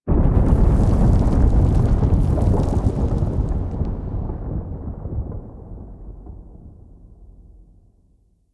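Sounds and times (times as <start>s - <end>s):
moon earthquake ambience: 0.1s - 6.8s.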